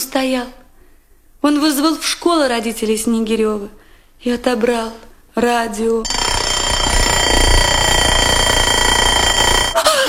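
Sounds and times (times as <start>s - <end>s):
speech: 0.2s - 0.6s, 1.4s - 6.2s
mechanical alarm clock ringing: 6.1s - 9.9s.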